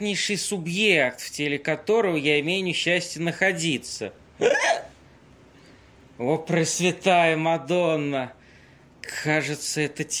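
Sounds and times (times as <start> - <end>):
speech: 0.0 - 4.9, 6.2 - 8.4, 9.0 - 10.1
man hiccuping: 4.4 - 5.0.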